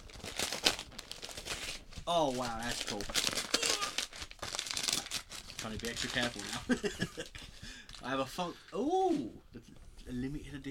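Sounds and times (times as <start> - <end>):
wrapping paper crinkling as a gift is unwrapped: 0.0 - 8.3
speech: 2.1 - 3.4, 5.6 - 10.6.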